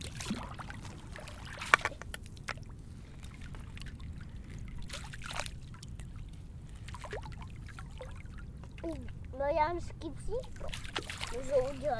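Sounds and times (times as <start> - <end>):
water sloshed into big waves: 0.0 - 9.4, 10.2 - 11.9
speech: 8.9 - 11.9.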